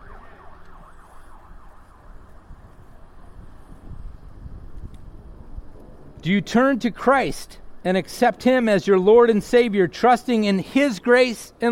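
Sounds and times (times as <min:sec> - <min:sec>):
ambulance siren wailing: 0:00.0 - 0:03.2
rumble of passing traffic: 0:00.0 - 0:11.7
speech: 0:06.2 - 0:11.7.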